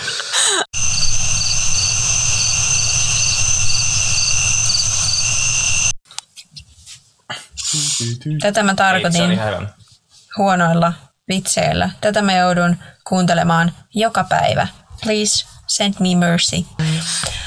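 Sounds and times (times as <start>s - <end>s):
crickets chirping: 0.8s - 6.0s
speech: 8.0s - 9.8s, 10.4s - 17.4s.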